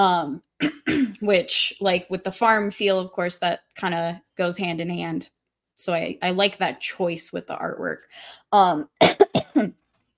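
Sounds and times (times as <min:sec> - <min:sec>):
speech: 0:00.0 - 0:09.8
harsh coughs: 0:00.6 - 0:01.2, 0:09.0 - 0:09.8.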